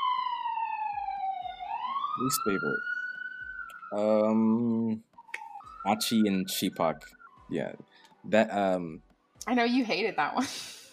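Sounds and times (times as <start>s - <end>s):
vehicle siren wailing: 0.0s - 7.9s
speech: 2.2s - 3.0s, 3.9s - 5.1s, 5.8s - 10.9s.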